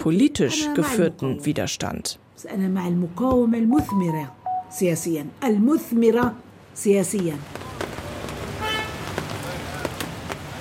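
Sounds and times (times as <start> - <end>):
speech: 0.0 - 7.6
street traffic humming outside an office window on a rainy foggy day: 0.0 - 10.5
car horn honk outside window: 8.6 - 9.1.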